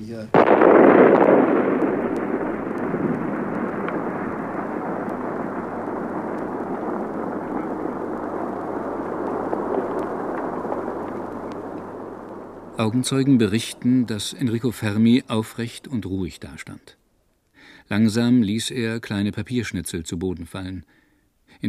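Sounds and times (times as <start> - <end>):
speech: 0.0 - 1.4, 12.8 - 17.0, 17.8 - 21.6
atomic bomb test explosion with long heavy roaring rumble: 0.3 - 15.7.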